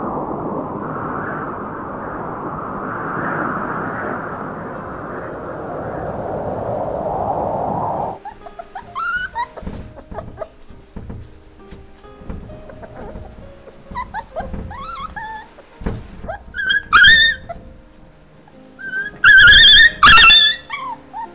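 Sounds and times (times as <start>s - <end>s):
dog whimpering: 8.2s - 21.3s.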